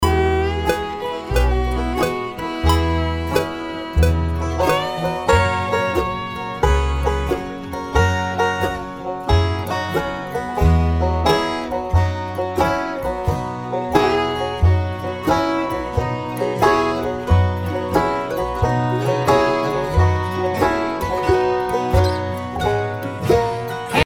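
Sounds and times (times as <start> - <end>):
banjo solo: 0.0 - 23.9.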